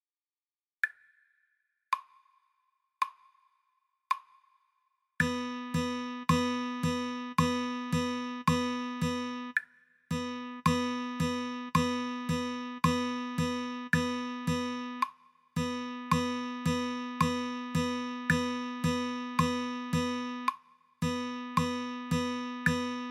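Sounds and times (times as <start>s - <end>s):
rhythm practice: 5.2s - 23.0s.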